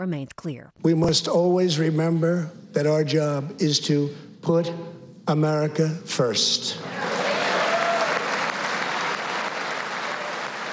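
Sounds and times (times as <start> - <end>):
speech: 0.0 - 7.1
applause and cheers from Republicans in Congress: 6.8 - 10.7.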